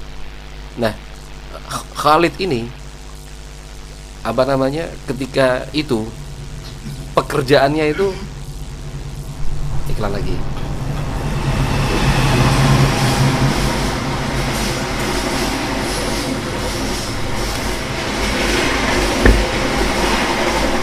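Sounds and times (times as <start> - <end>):
speech: 0.8 - 2.8, 4.2 - 6.2, 6.8 - 8.3, 9.9 - 10.6
trains rumbling past at a railway station: 9.0 - 20.8
rail cars rolling at a railway station: 10.4 - 20.8.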